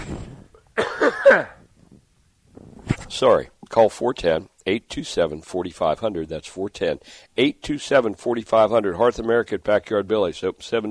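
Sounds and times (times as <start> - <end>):
person coughing: 0.8 - 1.6
speech: 1.3 - 1.6, 3.1 - 10.9.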